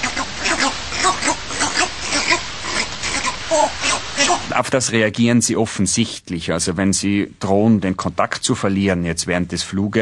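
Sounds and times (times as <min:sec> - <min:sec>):
trainer's guttural two-beat kom-kom call to northern bald ibises: 0:00.0 - 0:04.6
faint noisy outdoor background: 0:00.0 - 0:10.0
speech: 0:04.5 - 0:10.0.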